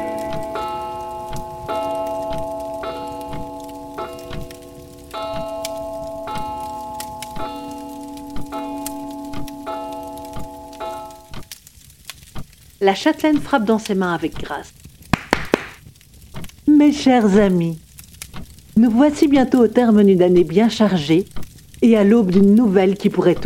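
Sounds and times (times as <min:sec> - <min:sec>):
pendulum clock striking the hour: 0:00.0 - 0:11.5
speech: 0:12.8 - 0:14.8, 0:16.8 - 0:17.8, 0:18.8 - 0:23.4.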